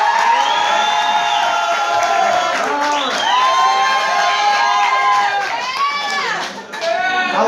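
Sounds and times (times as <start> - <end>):
dense applause from an audience: 0.0 - 7.2
audience cheering and whooping: 0.0 - 7.3.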